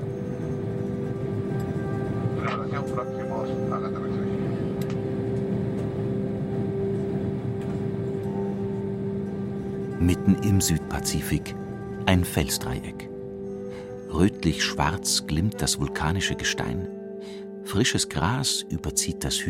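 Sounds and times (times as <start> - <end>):
airplane engine drone in a cabin in flight 10,000 meters above the sea: 0.0 - 16.4
faint tonal whine in an airplane cabin: 0.0 - 19.4
brief voices in an airplane cabin: 2.4 - 4.8
speech: 2.8 - 4.2, 10.0 - 13.1, 14.1 - 19.4.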